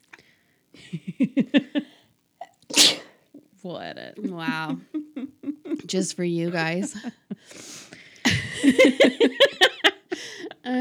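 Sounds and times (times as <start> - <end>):
laughter: 0.8 - 2.0, 4.2 - 7.6, 8.3 - 10.7
speech: 0.9 - 1.8, 3.7 - 5.3, 5.9 - 7.2, 8.7 - 9.5
person sneezing: 2.7 - 3.2.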